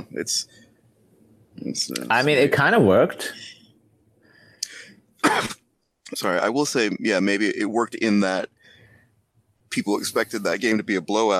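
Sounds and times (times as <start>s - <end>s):
speech: 0.2s - 0.7s, 1.6s - 3.6s, 5.2s - 8.5s, 9.8s - 11.3s
sharp coughs: 5.2s - 5.6s.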